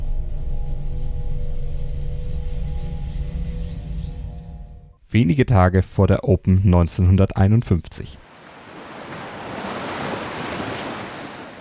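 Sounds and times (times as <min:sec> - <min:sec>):
speech: 0:05.1 - 0:08.3
ocean waves washing onto a beach: 0:08.2 - 0:11.5
wind blowing across the shore: 0:08.2 - 0:11.5.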